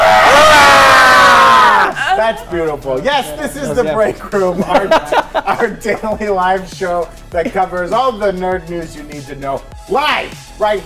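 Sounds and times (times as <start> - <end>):
group of people screaming together: 0.0 - 2.2
speech: 2.2 - 10.8
laughter: 3.4 - 6.5.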